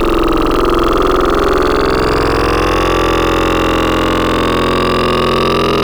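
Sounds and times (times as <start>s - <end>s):
throaty digital sound: 0.1s - 5.8s.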